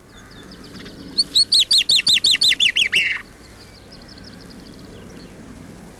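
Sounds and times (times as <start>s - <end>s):
common chaffinch singing downslurred notes: 0.1s - 4.2s.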